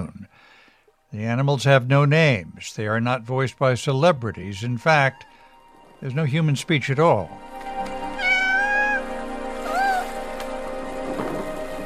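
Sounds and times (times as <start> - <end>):
soft constant hiss: 0.0 - 11.8
speech: 1.1 - 5.3, 6.0 - 7.5
cat meowing: 8.1 - 10.2.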